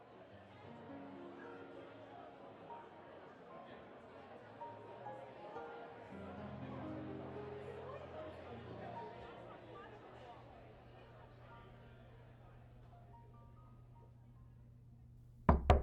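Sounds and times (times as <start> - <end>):
faint murmur: 0.0 - 14.8
knocking on a hotel room door: 15.4 - 15.8.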